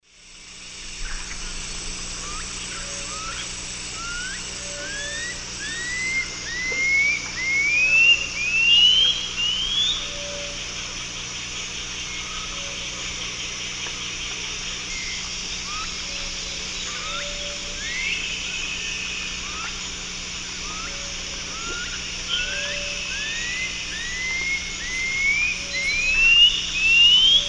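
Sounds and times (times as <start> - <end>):
Pipile pipile song in South American eastern lowlands: 0.9 - 27.4.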